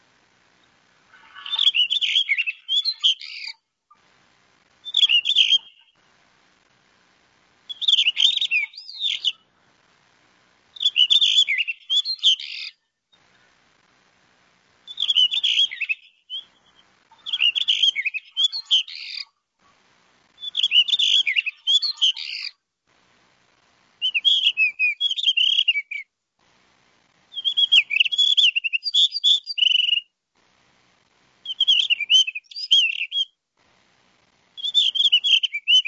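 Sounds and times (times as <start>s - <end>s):
male blue rock thrush singing: 1.2s - 3.6s, 4.8s - 6.0s, 7.7s - 9.4s, 10.8s - 12.8s, 14.9s - 19.3s, 20.4s - 22.6s, 24.0s - 26.0s, 27.3s - 30.0s, 31.4s - 33.3s, 34.6s - 35.8s.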